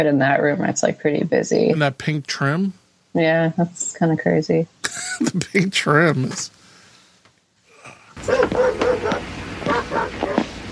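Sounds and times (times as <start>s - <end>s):
speech: 0.0s - 6.6s, 8.2s - 8.8s
laughter: 4.8s - 6.5s
several dogs barking: 8.2s - 10.6s.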